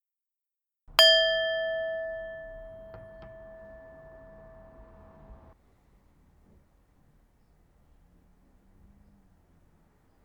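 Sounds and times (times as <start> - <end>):
bright gong-like timer chime ringing: 1.0 - 5.6.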